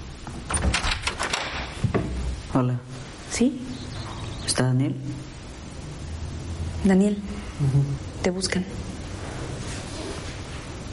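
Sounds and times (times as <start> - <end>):
house door latch and handle clicking and rattling: 0.5 - 2.2
speech: 2.6 - 3.8, 4.5 - 5.3, 6.8 - 8.8.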